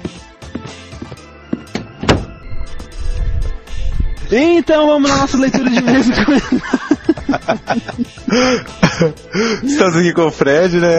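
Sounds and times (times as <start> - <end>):
low rumbling shuffle: 1.1 - 8.6
door shutting: 1.5 - 2.8
speech: 4.3 - 10.9
laughter: 5.3 - 10.1.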